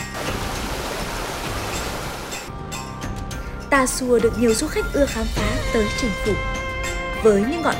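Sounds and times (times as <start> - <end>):
water rushing over rocks in a mountain stream: 0.0 - 2.5
speech: 3.7 - 6.6, 7.2 - 7.7.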